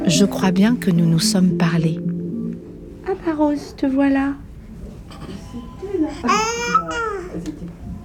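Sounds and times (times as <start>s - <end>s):
speech: 0.1s - 2.1s, 3.2s - 4.4s, 6.0s - 7.6s
baby babbling: 6.0s - 7.5s.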